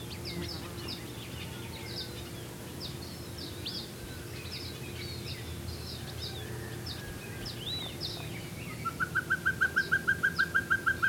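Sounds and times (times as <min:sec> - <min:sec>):
faint bird chirps: 0:00.0 - 0:11.0
Pacific pygmy owl Glaucidium peruanum hooting: 0:08.8 - 0:11.0.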